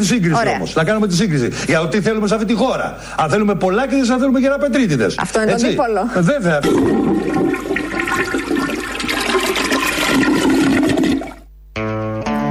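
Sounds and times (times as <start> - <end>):
speech: 0.0 - 8.5
toilet flush: 6.6 - 11.5.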